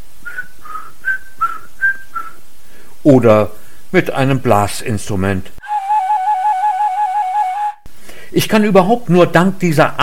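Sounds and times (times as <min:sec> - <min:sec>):
person whistling a tune: 0:00.2 - 0:02.4, 0:05.6 - 0:07.8
speech: 0:03.0 - 0:05.6, 0:08.4 - 0:10.0.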